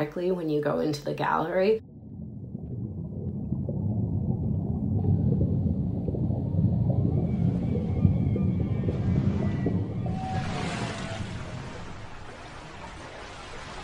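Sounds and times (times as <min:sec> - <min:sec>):
speech: 0:00.0 - 0:01.9
deep rumbling underwater wash: 0:01.4 - 0:13.8
whale calls: 0:05.1 - 0:13.8.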